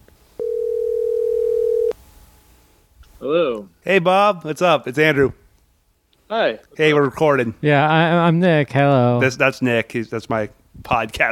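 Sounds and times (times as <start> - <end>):
electronic telephone ringing tone while placing a call: 0.4 - 2.0
speech: 3.2 - 5.4, 6.3 - 11.3.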